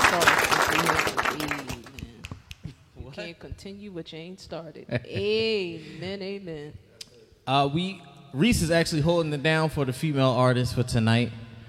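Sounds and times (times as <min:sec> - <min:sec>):
audience applause: 0:00.0 - 0:02.0
speech: 0:03.3 - 0:06.9, 0:07.5 - 0:11.4.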